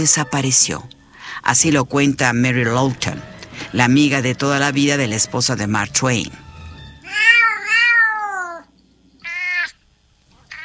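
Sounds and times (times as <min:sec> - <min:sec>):
speech: 0:00.0 - 0:06.4
cats meowing and calling: 0:07.0 - 0:09.8.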